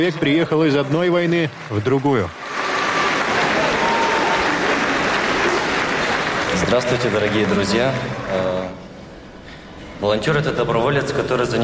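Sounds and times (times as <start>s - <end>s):
speech: 0.0s - 2.4s, 6.6s - 8.8s, 10.0s - 11.6s
audience applause: 0.0s - 8.8s.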